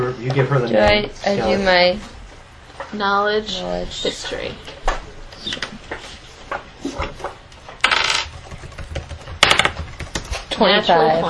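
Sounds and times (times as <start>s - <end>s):
speech: 0.2s - 2.2s, 2.9s - 4.8s, 5.4s - 5.8s, 10.6s - 11.2s
twenty-sided die clattering across a table during a tabletop role-playing game: 7.0s - 10.5s.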